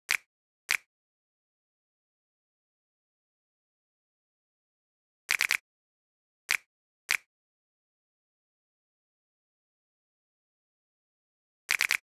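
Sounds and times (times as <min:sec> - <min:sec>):
drum loop with snaps: 0:05.3 - 0:05.6.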